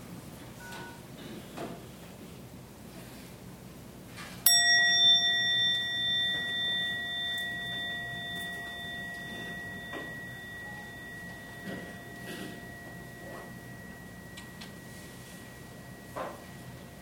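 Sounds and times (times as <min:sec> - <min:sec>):
meditation bell struck once: 0:04.5 - 0:16.9.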